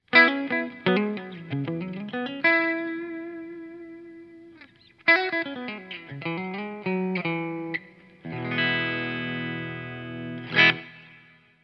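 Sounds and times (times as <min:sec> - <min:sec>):
electric guitar with bridge pickup: 0:00.0 - 0:11.6.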